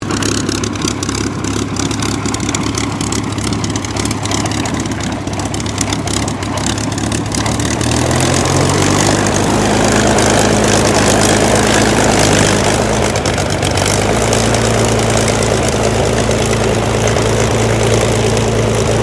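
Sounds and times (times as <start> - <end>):
Supermarine Spitfire Mk XVI aircraft engine taxiing: 0.0 - 19.0.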